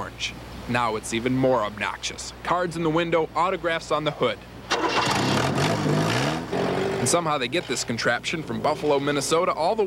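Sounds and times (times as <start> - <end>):
speech: 0.2 - 5.7, 7.1 - 9.8
1977 Chevette car engine cranking and starting: 4.7 - 7.8.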